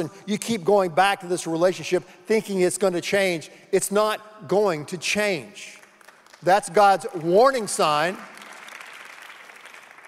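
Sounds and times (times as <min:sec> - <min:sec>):
speech: 0:00.0 - 0:05.8, 0:06.4 - 0:08.3
audience applause: 0:07.2 - 0:10.0.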